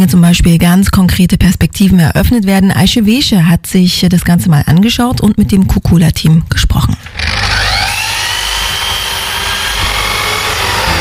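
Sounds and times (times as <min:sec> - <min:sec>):
speech: 0:00.0 - 0:07.2
power saw cutting wood from old refugee boats for a chair: 0:07.0 - 0:10.9.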